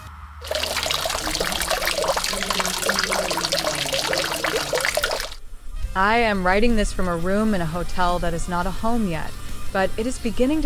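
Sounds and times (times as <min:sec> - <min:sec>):
fountain water spraying and splashing: 0:00.4 - 0:05.4
speech: 0:06.0 - 0:10.6.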